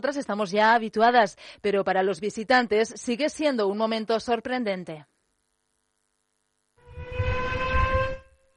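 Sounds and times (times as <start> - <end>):
speech: 0.0 - 5.1
air-raid style city siren wailing: 6.8 - 8.5.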